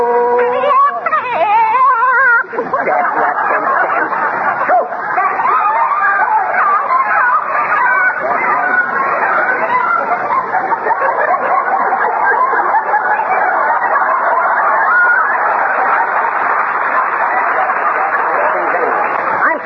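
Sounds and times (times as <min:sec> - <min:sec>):
flock of chickens clucking and squawking: 0:00.0 - 0:15.5
laughter: 0:00.0 - 0:19.6.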